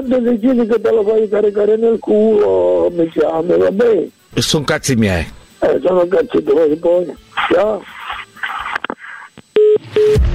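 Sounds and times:
speech: 0.0s - 8.0s
telephone dialing beeps: 9.5s - 10.2s.

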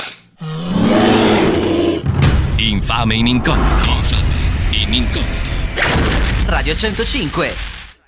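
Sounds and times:
bear roaring: 0.4s - 2.1s
speech: 2.9s - 4.3s, 4.9s - 7.7s.

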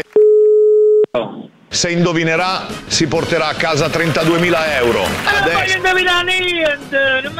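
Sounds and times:
loud sustained buzzing harmonic tone on a telephone line: 0.2s - 1.1s
speech: 1.8s - 7.3s.

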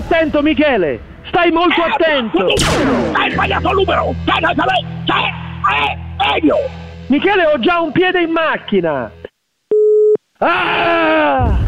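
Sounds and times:
speech: 0.2s - 9.2s, 10.4s - 11.6s
person groaning loudly: 3.1s - 6.8s, 10.4s - 11.6s
telephone busy-signal beep after hang-up: 9.7s - 10.2s.

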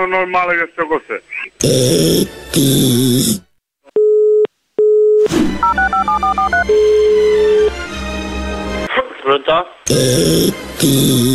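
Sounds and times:
speech: 0.2s - 3.5s, 9.3s - 11.3s
two long loud telephone beeps: 4.0s - 7.7s.

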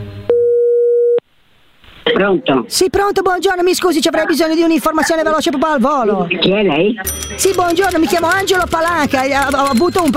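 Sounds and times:
telephone line tone while a call is being placed: 0.3s - 1.2s
faint hiss: 1.3s - 2.2s
speech: 2.1s - 10.1s.

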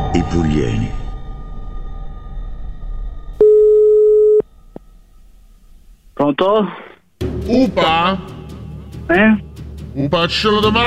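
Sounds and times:
low rumbling background: 0.0s - 10.1s
speech: 0.2s - 1.0s, 6.3s - 6.9s, 7.5s - 8.4s, 9.1s - 10.8s
steady electronic beep as a radio signal: 3.4s - 4.4s.

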